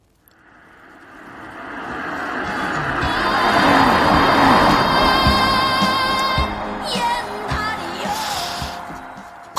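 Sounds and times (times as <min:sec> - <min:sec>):
car passing by with road rush: 0:00.3 - 0:09.5
music with a steady beat and melody from a car: 0:05.2 - 0:09.5.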